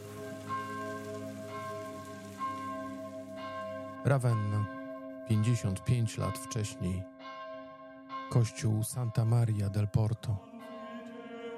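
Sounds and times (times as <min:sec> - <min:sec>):
steady rain falling: 0:00.0 - 0:04.8
soft chime strikes: 0:00.0 - 0:09.3
sustained bell-like tonal hum: 0:00.0 - 0:11.5
speech: 0:04.0 - 0:07.1, 0:08.3 - 0:10.5.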